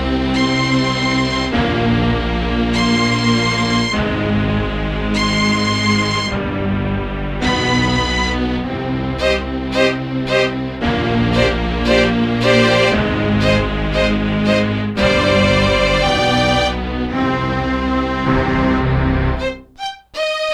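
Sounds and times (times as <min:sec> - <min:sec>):
stacked high bowed strings: 0:00.2 - 0:20.4.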